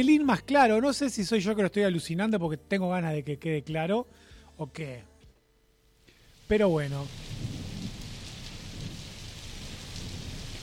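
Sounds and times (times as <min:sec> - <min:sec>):
speech: 0:00.0 - 0:05.1, 0:06.5 - 0:07.4
steady rain pouring: 0:06.2 - 0:10.6
low rumbles of thunder: 0:07.0 - 0:10.6.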